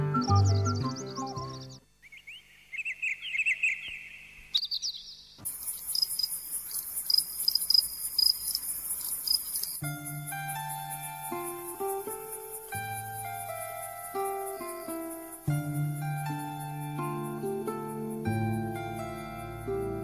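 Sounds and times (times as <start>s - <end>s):
bird-like chirps: 0.0s - 15.5s
cricket chirping: 0.1s - 20.0s.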